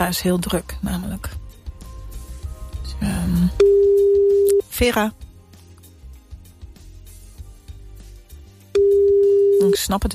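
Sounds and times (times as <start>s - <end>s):
speech: 0.0s - 1.4s, 3.0s - 3.9s, 4.8s - 5.2s, 9.7s - 10.1s
telephone calling tone as a call is placed: 3.6s - 4.6s, 8.8s - 9.8s.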